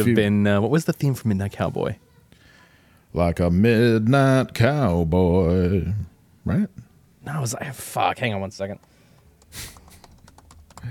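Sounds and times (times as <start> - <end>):
speech: 0.0 - 2.0, 3.1 - 8.9, 9.5 - 9.8
typing on loud old-style mechanical computer keyboard: 8.8 - 10.9.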